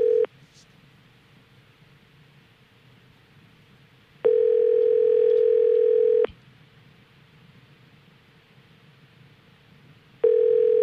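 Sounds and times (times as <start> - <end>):
ringback tone of an outgoing phone call: 0.0 - 0.3, 4.2 - 6.3, 10.2 - 10.8.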